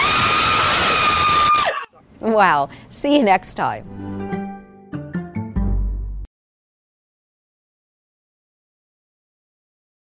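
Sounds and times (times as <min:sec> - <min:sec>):
woman screaming in fright in her garage: 0:00.0 - 0:02.0
speech: 0:02.2 - 0:04.3.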